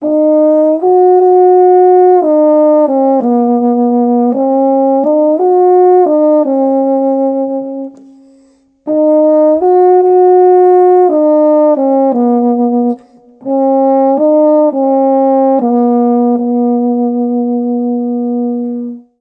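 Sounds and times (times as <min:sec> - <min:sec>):
euphonium baritone: 0:00.0 - 0:19.2.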